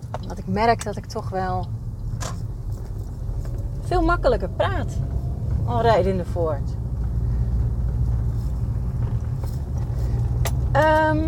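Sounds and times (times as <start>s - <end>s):
steady low rumble of a car interior while driving: 0.0s - 11.2s
speech: 0.5s - 1.8s, 3.9s - 5.1s, 5.7s - 6.8s, 10.8s - 11.2s.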